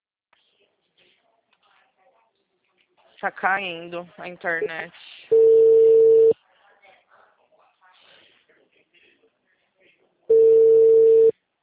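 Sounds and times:
speech: 3.2s - 5.1s
steady mid-pitched telephone line tone after a dropped call: 5.3s - 6.3s, 10.3s - 11.3s.

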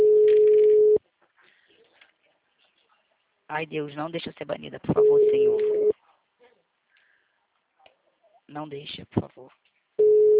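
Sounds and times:
phone ringback tone while placing a call: 0.0s - 1.0s, 5.0s - 5.9s, 10.0s - 10.3s
speech: 3.5s - 5.8s, 8.5s - 9.7s.

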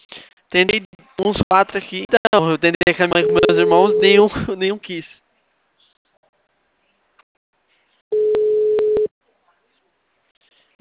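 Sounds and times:
speech: 0.5s - 5.2s
ringback tone on a phone line while placing a call: 3.2s - 4.2s, 8.1s - 9.1s.

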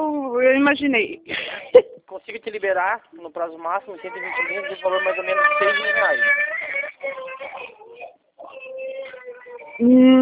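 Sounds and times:
speech: 0.4s - 7.2s, 9.8s - 10.1s
young son crying: 4.0s - 10.1s.

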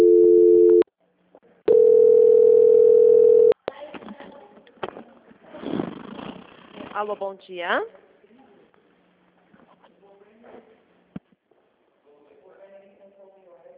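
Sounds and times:
telephone call transfer tone: 0.0s - 0.9s, 1.7s - 3.6s
speech: 7.0s - 8.0s.

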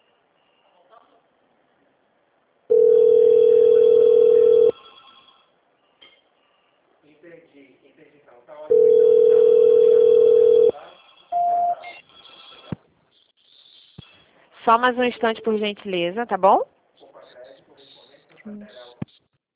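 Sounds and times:
telephone line waiting tones during call transfer: 2.7s - 5.3s, 8.7s - 10.8s
speech: 14.7s - 16.7s.

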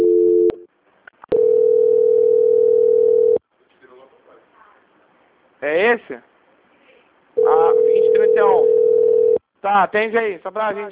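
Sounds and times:
telephone tone during a call transfer: 0.0s - 0.6s, 1.3s - 3.4s, 7.4s - 9.4s
speech: 5.9s - 6.3s, 9.6s - 10.9s.

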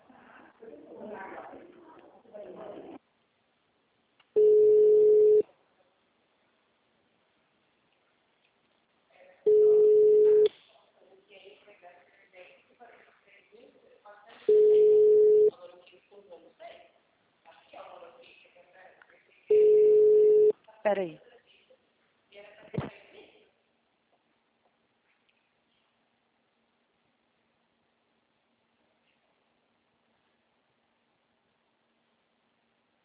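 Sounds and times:
telephone busy signal on an occupied extension: 4.4s - 5.4s, 9.5s - 10.5s, 14.5s - 15.5s, 19.5s - 20.5s
speech: 20.9s - 21.3s.

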